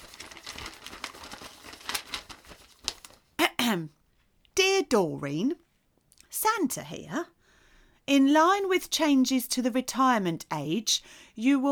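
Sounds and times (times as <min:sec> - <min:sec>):
crisp paper letter rustling and crinkling as it is unfolded: 0:00.0 - 0:03.3
speech: 0:03.7 - 0:04.0, 0:04.9 - 0:05.6, 0:06.4 - 0:07.4, 0:08.1 - 0:11.7.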